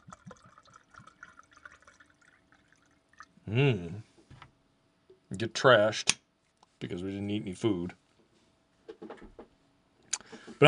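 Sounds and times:
rum poured into a glass: 0:00.0 - 0:03.4
speech: 0:03.5 - 0:04.1, 0:05.4 - 0:06.2, 0:06.8 - 0:08.0.

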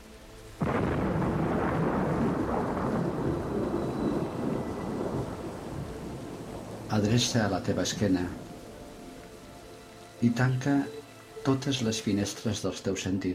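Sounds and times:
heavy rain: 0:00.0 - 0:13.3
thunder crack: 0:00.6 - 0:08.5
speech: 0:07.0 - 0:08.4, 0:10.2 - 0:13.3.

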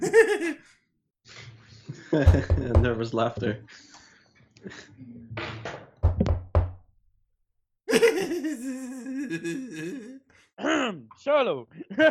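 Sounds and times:
laughter: 0:00.0 - 0:00.6, 0:01.9 - 0:03.0, 0:07.9 - 0:10.2, 0:11.8 - 0:12.0
speech: 0:02.1 - 0:03.9, 0:04.6 - 0:05.2, 0:07.9 - 0:12.0
knocking on a door: 0:02.2 - 0:03.0, 0:05.6 - 0:06.8
soft vocal sounds: 0:08.4 - 0:10.4.

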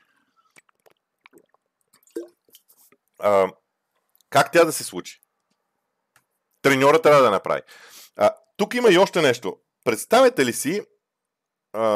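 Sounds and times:
gulp of water: 0:00.4 - 0:02.4
sipping water: 0:00.4 - 0:03.2
speech: 0:03.2 - 0:03.6, 0:04.3 - 0:05.2, 0:06.6 - 0:10.9, 0:11.7 - 0:11.9.

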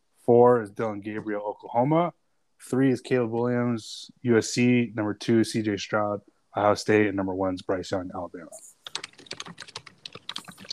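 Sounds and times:
speech: 0:00.3 - 0:08.7
typing on a computer keyboard: 0:08.8 - 0:10.7.

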